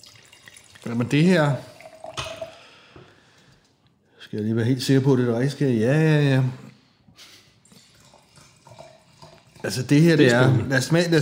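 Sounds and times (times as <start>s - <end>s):
little water tipped out of a rinsed drinking glass: 0.0s - 2.6s, 7.6s - 10.4s
soft drip: 0.0s - 2.6s, 7.6s - 10.4s
speech: 0.8s - 1.7s, 4.3s - 6.7s, 9.7s - 11.2s.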